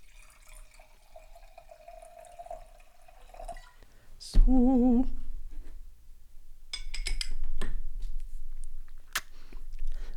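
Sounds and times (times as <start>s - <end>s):
wine pouring into a glass: 0.0s - 3.8s
speech: 4.5s - 5.2s.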